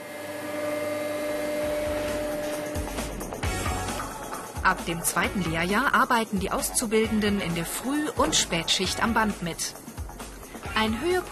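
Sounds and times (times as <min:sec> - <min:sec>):
CNC machine milling tool shapes out of a foam mat: 0:00.0 - 0:03.2
speech: 0:04.6 - 0:09.9, 0:10.8 - 0:11.3.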